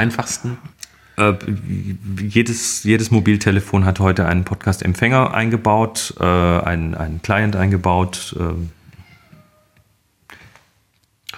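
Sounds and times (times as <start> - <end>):
speech: 0.0 - 8.8
cat meowing: 8.9 - 9.8.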